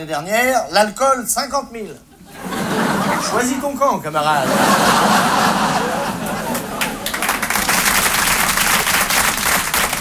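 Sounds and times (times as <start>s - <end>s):
speech: 0.0s - 2.1s, 2.7s - 6.0s
laughter: 2.2s - 3.7s, 4.3s - 7.6s
audience applauding: 5.0s - 9.9s.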